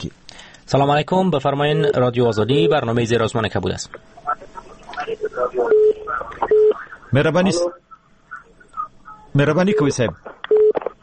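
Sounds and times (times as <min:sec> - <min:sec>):
speech: 0:00.0 - 0:07.8, 0:09.3 - 0:10.4
garbled voice chatter over a telephone line: 0:03.9 - 0:10.4
short steady electronic phone-line beeps: 0:05.0 - 0:06.8, 0:09.1 - 0:10.9.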